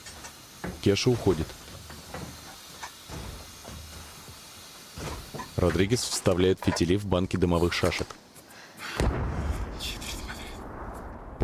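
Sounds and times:
speech: 0.8 - 1.6, 5.6 - 8.2
artillery shell exploding beside a railway track: 9.0 - 11.4.

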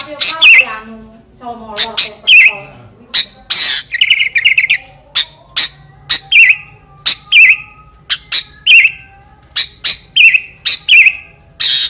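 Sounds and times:
Sooty-headed bulbul song with snapping clicks, chattering and whistled phrases: 0.0 - 0.9, 1.7 - 11.8.

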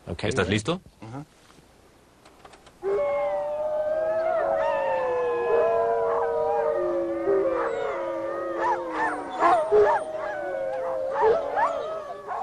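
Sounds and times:
recorded wolf howls played from a loudspeaker: 2.8 - 12.4
recorded wolf yips and whimpers: 8.6 - 12.4.

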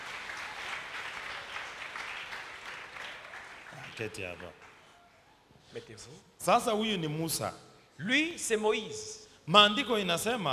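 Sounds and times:
church congregation applauding: 0.0 - 5.4
speech: 4.0 - 4.7, 5.7 - 10.5.

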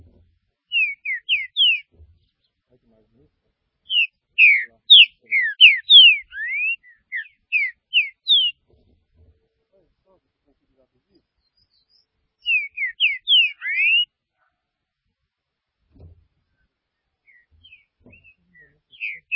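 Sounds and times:
Green-winged saltator whistling: 0.7 - 1.9, 3.9 - 8.6, 11.5 - 14.1, 17.3 - 19.3.

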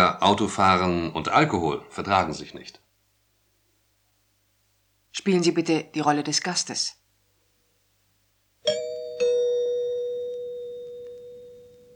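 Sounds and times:
speech: 0.2 - 2.8, 5.2 - 7.0
doorbell ringing with a two-tone ding-dong chime: 8.6 - 11.9.

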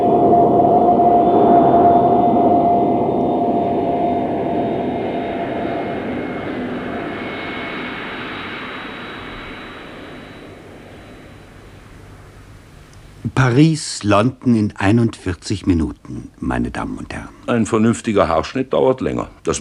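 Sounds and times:
jet airliner landing with landing gear lowered: 0.0 - 12.7
speech: 13.4 - 19.6.

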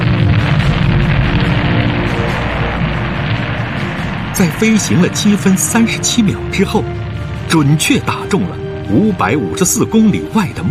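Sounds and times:
rocket roar of a missile launch spewing flames: 0.0 - 8.1
speech: 4.4 - 10.6.

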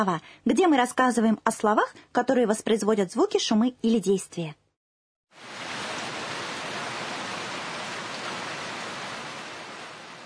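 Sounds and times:
speech: 0.0 - 4.6
heavy rain: 5.4 - 10.2.

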